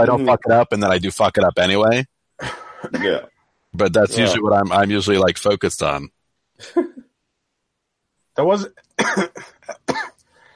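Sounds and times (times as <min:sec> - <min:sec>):
speech: 0:00.0 - 0:06.9, 0:08.4 - 0:09.6
harsh coughs: 0:02.4 - 0:03.3, 0:09.0 - 0:10.2
short raspy breath: 0:10.3 - 0:10.5.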